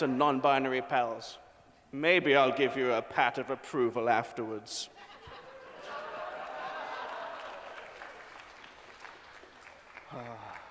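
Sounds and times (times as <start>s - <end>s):
speech: 0.0s - 5.0s
laughter: 5.0s - 8.0s
crowd applause: 5.8s - 10.6s.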